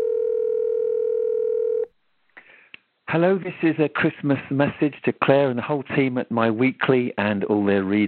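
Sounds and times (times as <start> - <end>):
steady electronic telephone dialing tone: 0.0 - 1.9
speech: 3.1 - 8.0.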